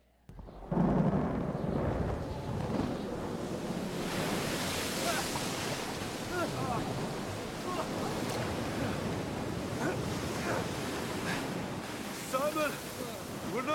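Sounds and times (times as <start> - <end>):
stormy sea waves crashing at night: 0.3 - 13.7
strong roaring wind buffeting the microphone: 0.3 - 13.7
men shouting while rowing a boat in a storm: 4.9 - 11.6.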